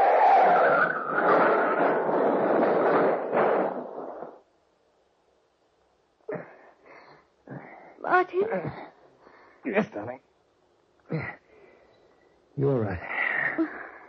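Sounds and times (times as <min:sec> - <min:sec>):
car skidding off the road into a ditch: 0:00.0 - 0:04.3
speech: 0:08.2 - 0:08.9, 0:09.6 - 0:10.3, 0:12.6 - 0:13.8.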